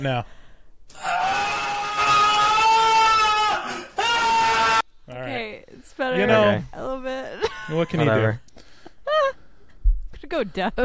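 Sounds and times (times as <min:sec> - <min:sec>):
speech: 0:00.0 - 0:01.1, 0:06.0 - 0:08.4, 0:10.3 - 0:10.8
loud piercing scream played through headphones: 0:00.9 - 0:04.8
laughter: 0:07.4 - 0:08.4.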